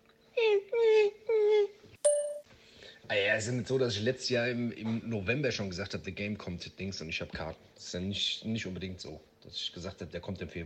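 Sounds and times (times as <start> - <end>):
person imitating a whimpering dog with whiny yelps: 0.3 - 1.8
speech: 3.1 - 10.6.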